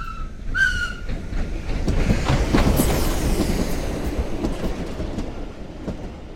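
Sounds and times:
train rumbling along the rails with clickety-clack: 0.0s - 6.3s.

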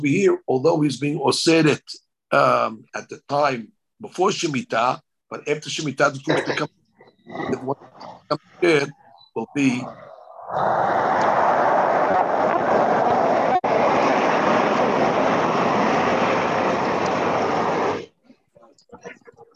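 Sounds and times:
speech: 0.0s - 12.4s
loud steady rumbling roar: 9.7s - 18.1s.

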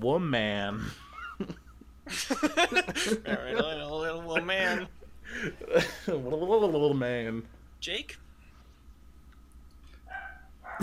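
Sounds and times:
speech: 0.0s - 8.2s
laughter: 0.8s - 6.4s
small dog giving high-pitched yappy barks: 10.0s - 10.8s.

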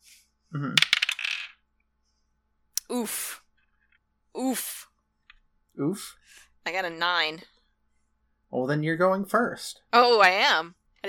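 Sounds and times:
speech: 0.5s - 0.9s, 3.0s - 3.4s, 4.4s - 4.9s, 5.8s - 7.5s, 8.5s - 11.0s
dice being rolled on a table during a game: 0.8s - 1.6s.

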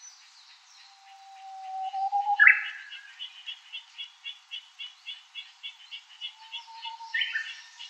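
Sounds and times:
Japanese bush warbler song: 0.0s - 7.8s.

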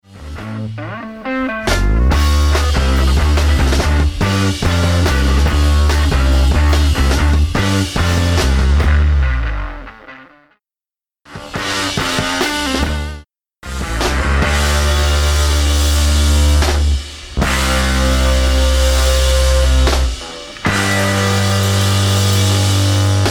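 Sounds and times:
drums: 0.0s - 10.3s, 11.3s - 23.2s
guitar: 0.0s - 10.6s, 11.3s - 23.2s.

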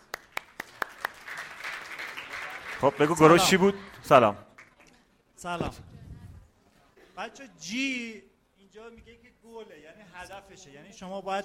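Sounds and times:
scattered clapping from a small group: 0.0s - 5.0s
speech: 2.8s - 4.5s, 5.4s - 6.0s, 7.2s - 11.4s.

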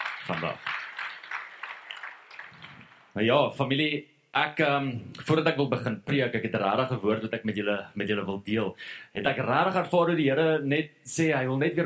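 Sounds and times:
church audience applauding: 0.0s - 3.2s
speech: 0.2s - 0.7s, 3.2s - 11.8s.

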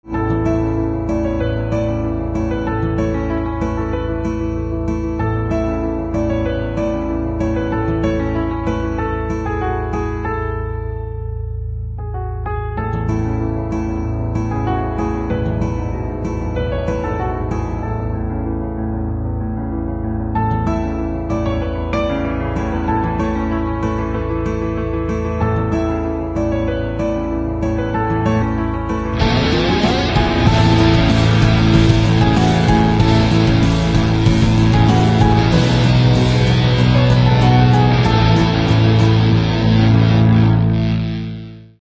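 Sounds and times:
guitar in instrumental ringtone: 0.0s - 41.8s
piano in instrumental ringtone: 0.0s - 41.8s.

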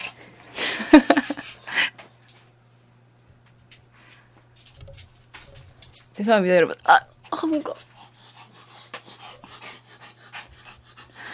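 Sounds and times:
laughter: 0.6s - 1.9s
speech: 0.9s - 1.2s, 6.2s - 7.9s
dog panting heavily: 7.5s - 11.3s.

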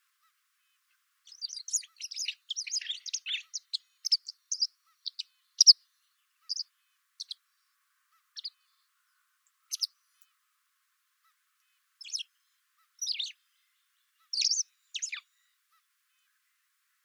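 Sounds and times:
white wagtail Motacilla alba chip calls: 1.3s - 5.8s, 6.4s - 6.6s, 7.2s - 7.4s, 9.7s - 9.9s, 12.0s - 12.3s, 13.0s - 13.4s, 14.3s - 15.2s.

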